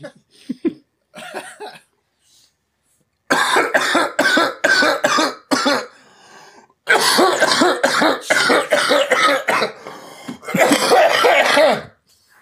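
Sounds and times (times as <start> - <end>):
person coughing: 1.2 - 1.9, 3.3 - 6.0, 6.9 - 12.0
person clearing throat: 3.3 - 5.9, 6.9 - 9.8, 10.4 - 12.0.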